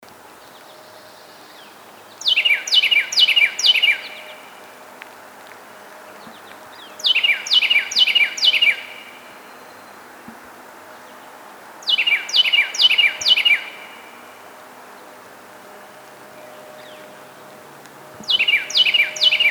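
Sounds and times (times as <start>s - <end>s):
Carolina wren Thryothorus ludovicianus singing: 1.5s - 4.5s, 6.2s - 10.0s, 11.8s - 14.1s, 18.2s - 19.4s.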